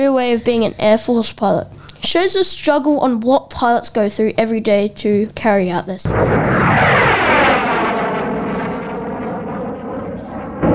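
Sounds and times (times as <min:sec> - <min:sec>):
speech: 0:00.0 - 0:07.4
fighter jet engine roar sweeping past: 0:06.1 - 0:10.7.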